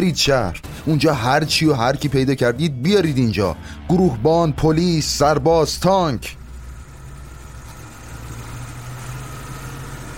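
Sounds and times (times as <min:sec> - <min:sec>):
speech: 0:00.0 - 0:06.4
vehicle engine idling: 0:03.1 - 0:10.1.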